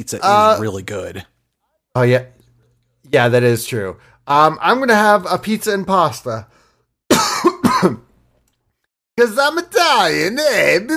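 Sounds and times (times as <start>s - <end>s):
speech: 0.0s - 1.3s, 2.0s - 2.4s, 3.0s - 6.6s, 7.2s - 8.1s, 9.2s - 10.9s
person coughing harshly: 7.1s - 8.1s.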